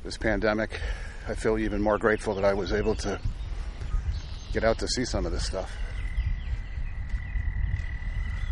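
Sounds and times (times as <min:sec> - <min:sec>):
speech: 0:00.1 - 0:03.3, 0:04.5 - 0:05.8
dense chorus of frogs croaking: 0:05.6 - 0:08.5.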